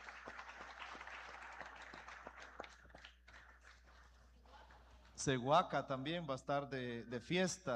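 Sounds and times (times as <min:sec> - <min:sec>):
crowd applauding during a Eucharist: 0:00.0 - 0:05.2
speech: 0:05.2 - 0:07.7.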